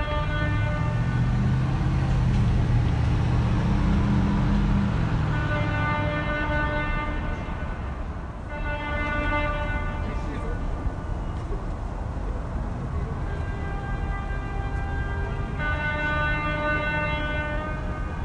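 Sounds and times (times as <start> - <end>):
car horns honking at a Christmas parade: 0.0 - 2.0, 5.2 - 10.6, 13.2 - 18.2
low rumble of traffic: 0.0 - 18.2.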